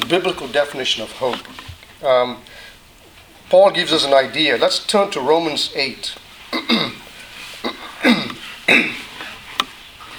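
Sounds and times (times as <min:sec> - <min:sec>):
speech: 0:00.1 - 0:02.7, 0:03.5 - 0:07.0, 0:08.0 - 0:09.0
man clearing his throat: 0:06.5 - 0:09.2.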